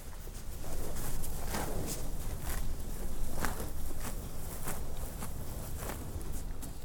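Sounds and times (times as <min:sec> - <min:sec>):
low rumble of wind or outdoor background: 0:00.0 - 0:06.8
cows chomping on lush thick grass in a pasture: 0:00.7 - 0:06.8.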